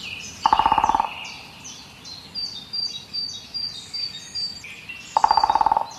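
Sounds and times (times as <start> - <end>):
small birds chirping and twittering: 0.0 - 5.9
woodpecker drumming, probably green woodpecker: 0.4 - 1.5, 5.1 - 5.9.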